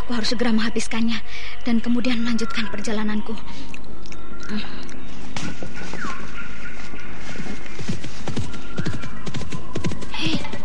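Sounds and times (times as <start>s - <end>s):
speech: 0.2s - 3.9s, 4.5s - 6.2s
horse hooves clip-clopping: 5.4s - 10.6s.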